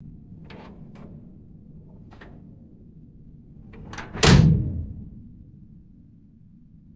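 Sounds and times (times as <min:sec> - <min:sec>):
heavy metal submarine bulkhead door closing: 0:00.3 - 0:05.6.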